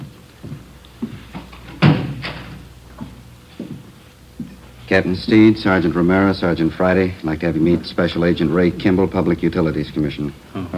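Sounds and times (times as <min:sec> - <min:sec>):
shuffling: 0:00.0 - 0:05.4
door swinging shut with a solid thud: 0:01.7 - 0:02.6
speech: 0:04.9 - 0:10.7.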